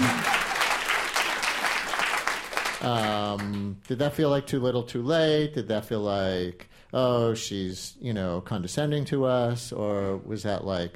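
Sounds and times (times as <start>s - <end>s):
crowd applause: 0.0s - 3.6s
speech: 2.8s - 10.9s.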